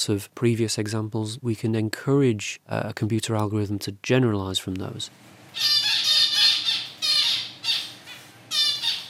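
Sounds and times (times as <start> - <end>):
speech: 0.0 - 5.8
female zebra finch calls in a university laboratory aviary: 5.6 - 9.0.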